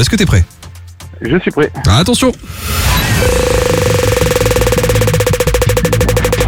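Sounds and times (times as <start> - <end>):
speech: 0.0 - 0.5, 1.2 - 4.0
low music: 0.0 - 6.4
steady held tone: 2.6 - 6.4
game-show prize wheel ticking as it is spun: 3.3 - 6.4.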